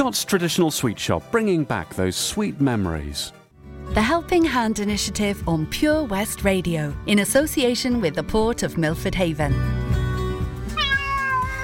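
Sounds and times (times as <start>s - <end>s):
speech: 0.0s - 10.0s
cat meowing: 10.7s - 11.6s.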